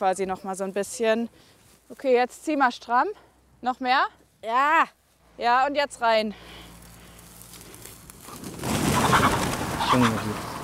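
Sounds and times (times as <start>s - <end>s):
speech: 0.0s - 6.7s, 9.9s - 10.5s
chickens clucking and squawking in an outdoor enclosure while being moved: 8.2s - 10.6s.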